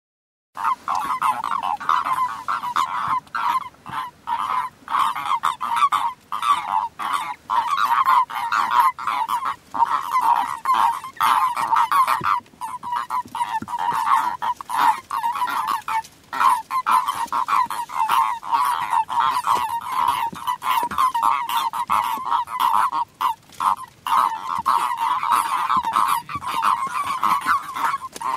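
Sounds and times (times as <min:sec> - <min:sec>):
common toads calling: 0:00.6 - 0:28.3.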